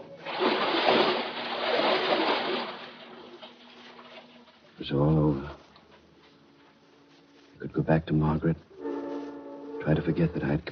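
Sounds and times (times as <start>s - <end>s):
sloshing churning water: 0.0s - 4.8s
body dropping into water with a heavy splash: 0.2s - 3.6s
speech: 4.9s - 5.6s, 7.8s - 8.7s, 9.8s - 10.6s.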